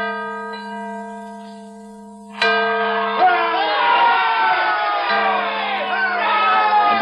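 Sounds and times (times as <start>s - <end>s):
large repaired bell ringing at Independence Hall in Philadelphia: 0.0s - 6.9s
crowd cheering and shouting: 3.0s - 6.9s.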